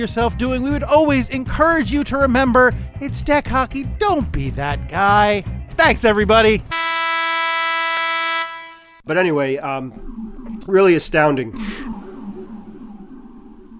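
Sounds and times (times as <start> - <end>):
speech: 0.0 - 6.8, 9.1 - 12.0
siren blaring: 6.7 - 13.7.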